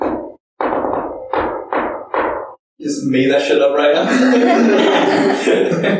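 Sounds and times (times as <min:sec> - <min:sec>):
patterned knocking on a door: 0:00.0 - 0:02.6
speech: 0:02.8 - 0:05.9
laughter: 0:04.0 - 0:05.9.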